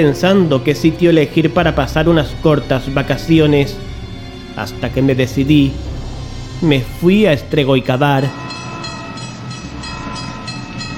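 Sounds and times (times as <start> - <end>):
speech: 0.0 - 3.9, 4.6 - 5.9, 6.6 - 8.4
old-fashioned train running on the line from Temesvar: 1.4 - 10.9.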